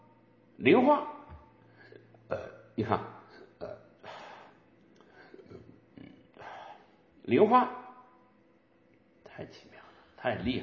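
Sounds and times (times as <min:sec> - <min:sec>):
speech: 0:00.6 - 0:01.2, 0:02.3 - 0:03.8, 0:07.3 - 0:07.8, 0:09.4 - 0:10.6
person burping: 0:02.3 - 0:02.7, 0:03.4 - 0:03.9, 0:05.4 - 0:06.4.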